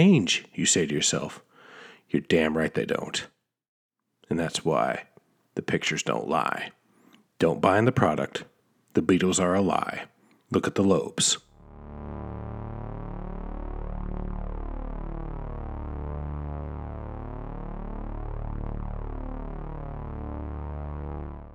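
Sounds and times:
speech: 0:00.0 - 0:01.5, 0:02.1 - 0:03.4, 0:04.3 - 0:06.8, 0:07.4 - 0:12.4
low-frequency buzzing drone presented as the brown note: 0:11.6 - 0:21.5.

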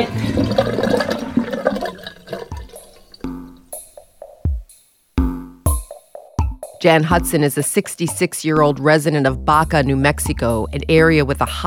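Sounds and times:
toilet flushing: 0:00.0 - 0:03.2
speech: 0:06.8 - 0:11.6.

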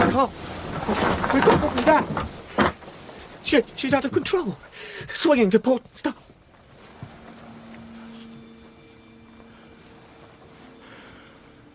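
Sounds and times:
broad rush of churning water: 0:00.0 - 0:11.7
speech: 0:00.2 - 0:02.4, 0:03.5 - 0:06.2
low humming tone: 0:06.4 - 0:11.7
boat engine drone: 0:06.5 - 0:11.7.

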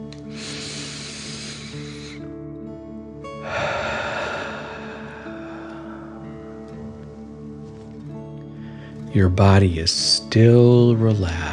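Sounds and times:
soft steady musical drone: 0:00.0 - 0:11.4
forceful exhale through the mouth during a breathing exercise: 0:00.2 - 0:02.3, 0:03.4 - 0:06.8
deep breath drawn in through the nose during a breathing exercise: 0:00.2 - 0:02.4, 0:03.3 - 0:07.2
speech: 0:09.2 - 0:11.5.

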